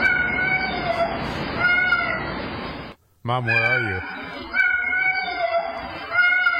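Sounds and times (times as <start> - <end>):
cat meowing: 0.0 - 2.4, 3.5 - 6.5
speech: 3.3 - 4.6.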